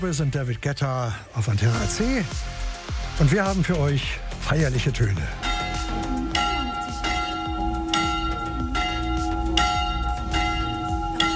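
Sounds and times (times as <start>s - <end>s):
speech: 0.0s - 2.6s, 3.2s - 5.5s
church bells pealing with long humming tones: 5.4s - 11.3s.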